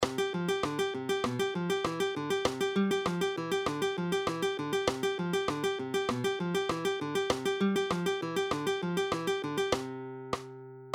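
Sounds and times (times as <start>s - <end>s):
guitar fingerpicking with alternating bass: 0.0s - 10.9s.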